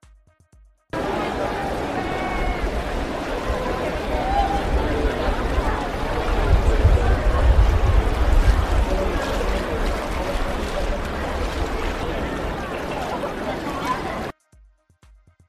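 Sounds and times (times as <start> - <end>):
murmur of crowd chatter: 1.0 - 14.3
tourists wading through knee-deep flood water in Venice: 1.0 - 14.3
low rumble: 2.8 - 12.2.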